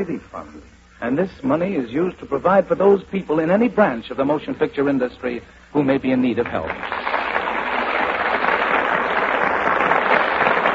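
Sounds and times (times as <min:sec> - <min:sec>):
speech: 0:00.0 - 0:07.0
large studio audience applause: 0:06.6 - 0:10.7.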